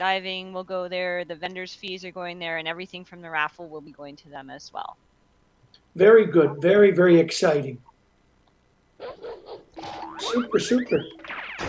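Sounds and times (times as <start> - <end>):
speech: 0.0 - 5.1, 6.0 - 7.9, 9.0 - 11.6
dog barking with a whiny edge: 9.0 - 9.6.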